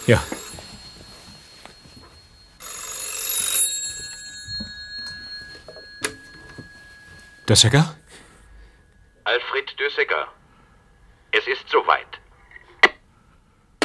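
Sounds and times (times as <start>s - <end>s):
speech: 0.0s - 0.4s, 7.5s - 8.0s, 9.3s - 10.4s, 11.3s - 12.2s
lingering tone: 0.0s - 10.1s
old-fashioned telephone bell ringing: 0.0s - 10.2s.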